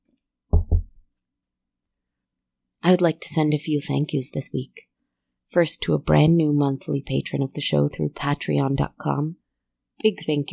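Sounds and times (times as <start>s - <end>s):
knocking on wood: 0.5s - 1.0s
speech: 2.9s - 4.9s, 5.5s - 9.4s, 10.0s - 10.5s.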